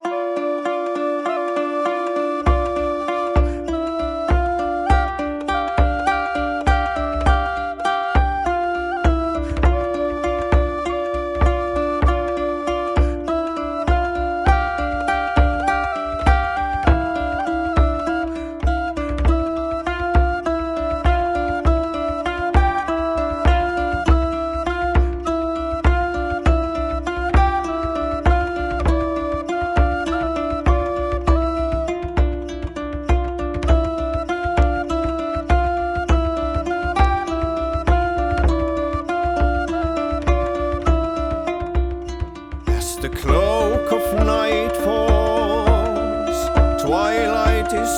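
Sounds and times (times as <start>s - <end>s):
flute: 0.0s - 47.9s
kitara: 0.0s - 47.9s
drum: 42.7s - 47.9s
singing voice: 42.7s - 47.9s.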